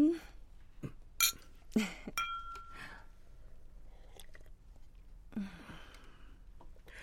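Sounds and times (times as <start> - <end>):
glasses clinking in a toast: 1.2 - 1.4, 2.2 - 3.0
soft chewing and small mouth sounds: 3.8 - 6.9.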